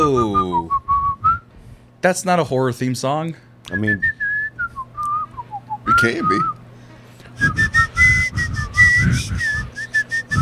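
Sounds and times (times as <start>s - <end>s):
person whistling a quick lilting melody: 0.0s - 1.5s, 3.8s - 6.6s, 7.4s - 10.4s
speech: 2.0s - 4.2s, 6.0s - 6.6s
breathy rhythmic low-end puffs: 6.9s - 10.4s.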